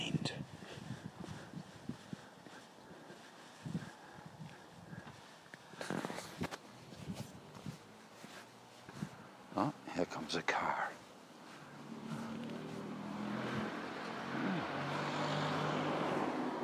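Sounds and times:
faint whispery sounds: 0.0s - 15.4s
brief soft rustling: 0.4s - 9.5s, 10.1s - 13.0s
car engine humming steadily: 1.1s - 16.6s
speech: 9.6s - 11.0s.

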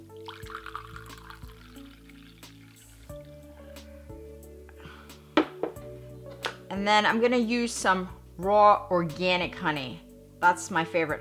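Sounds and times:
tea pouring into a cup: 0.0s - 3.6s
speech: 6.8s - 11.1s.

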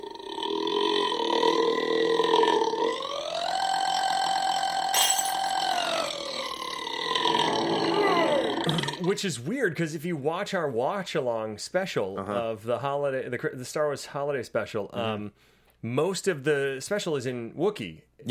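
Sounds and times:
long loud burp: 0.0s - 9.2s
speech: 9.1s - 18.3s.

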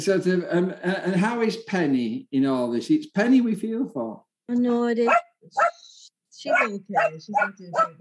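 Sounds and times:
speech: 0.0s - 5.8s, 6.4s - 7.9s
small dog barking in sharp high-pitched yaps: 5.1s - 5.8s, 6.5s - 7.9s.

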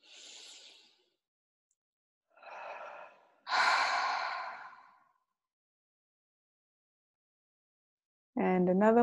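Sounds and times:
deep audible exhale during a guided breathing exercise: 0.0s - 1.0s, 2.4s - 5.0s.

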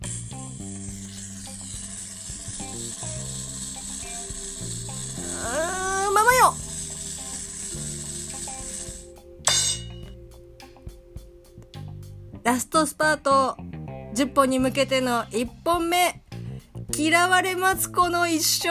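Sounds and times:
mechanical roulette wheel spinning with ratcheting clicks: 0.0s - 9.1s
speech: 12.8s - 13.6s, 14.2s - 16.2s, 17.0s - 18.6s.

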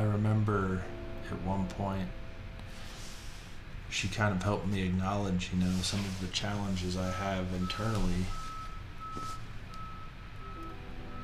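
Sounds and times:
speech: 0.8s - 2.2s, 3.9s - 8.4s, 9.2s - 9.4s
garbage truck reversing alarm beeps: 7.6s - 11.2s.

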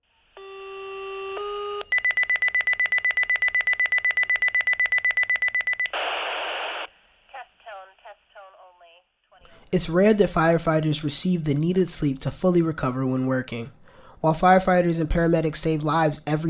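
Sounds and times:
fire station alarm electronic tones: 0.4s - 6.0s
radio static and garbled chirps: 5.9s - 9.0s
speech: 9.7s - 16.4s.

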